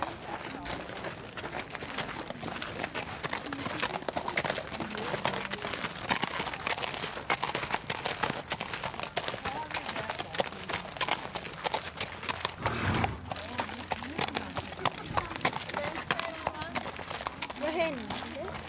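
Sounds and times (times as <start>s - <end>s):
horse hooves clip-clopping on a terrain-course trail: 0.0s - 18.6s
outdoor rustling: 12.0s - 18.6s
horse giving a short breathy snort: 12.4s - 13.5s.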